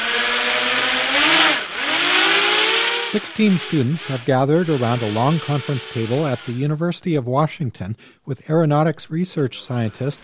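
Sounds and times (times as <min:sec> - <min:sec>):
electric motors of a student-built drone throttling up: 0:00.0 - 0:06.7
speech: 0:03.1 - 0:10.2.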